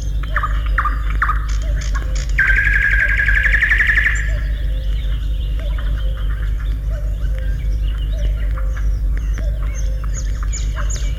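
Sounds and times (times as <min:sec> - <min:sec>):
low steady hum: 0:00.0 - 0:11.1
nightingale singing from bushes in a forest after sunrise: 0:00.0 - 0:11.1.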